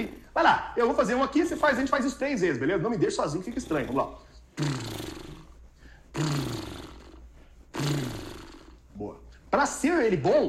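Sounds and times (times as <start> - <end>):
speech: 0.0 - 5.1, 9.0 - 10.4
lip trills imitating a motorcycle engine: 2.9 - 8.9.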